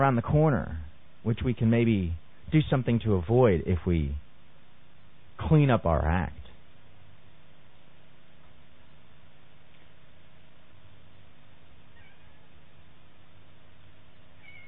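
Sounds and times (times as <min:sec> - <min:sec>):
speech: 0:00.0 - 0:04.2, 0:05.4 - 0:06.4
steady low hum: 0:00.0 - 0:14.6
cat meowing: 0:11.9 - 0:12.6, 0:14.4 - 0:14.6.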